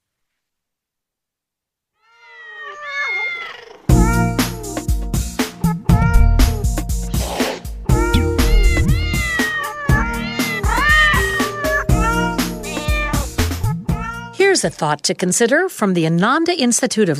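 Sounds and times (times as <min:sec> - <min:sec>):
cats meowing: 0:02.0 - 0:04.3, 0:08.0 - 0:14.4
loud rhythmic musical backing: 0:04.7 - 0:13.8
speech: 0:14.6 - 0:17.1.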